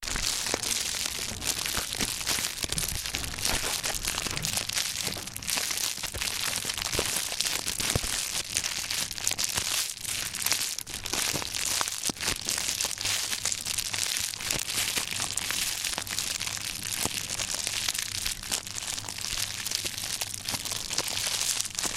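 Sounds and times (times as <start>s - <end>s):
fire: 0.0s - 21.9s.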